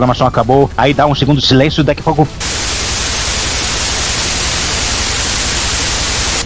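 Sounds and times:
speech: 0.0s - 2.7s
television static white noise: 0.0s - 6.4s.

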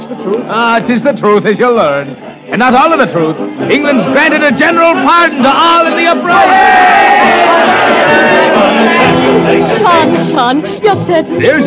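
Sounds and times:
speech: 0.1s - 11.6s
crowd of English soldiers cheering and shouting: 3.9s - 9.2s.

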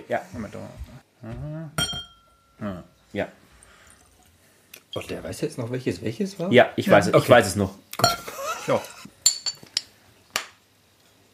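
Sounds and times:
speech: 0.1s - 1.9s, 2.6s - 3.4s, 4.9s - 9.2s
glass clinking as a bottle is closed and drinks are passed around: 1.8s - 2.6s, 8.0s - 9.9s.

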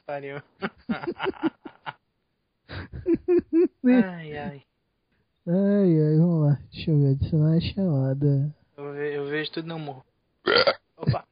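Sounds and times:
speech: 0.1s - 1.6s, 2.7s - 4.7s, 5.5s - 11.3s
laughter: 0.4s - 2.0s, 2.7s - 3.8s
short loud raspy burp: 10.4s - 11.3s.

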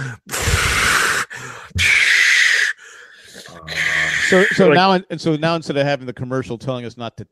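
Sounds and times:
person imitating a woman breathing from an oxygen tank: 0.0s - 4.8s
speech: 4.3s - 7.2s.

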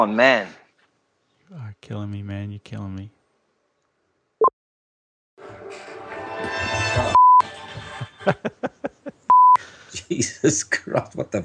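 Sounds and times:
speech: 0.0s - 0.6s, 1.5s - 3.2s, 8.2s - 9.2s, 10.0s - 11.4s
laughter: 7.6s - 9.3s
news app alarm beeping from a phone: 9.3s - 9.6s.

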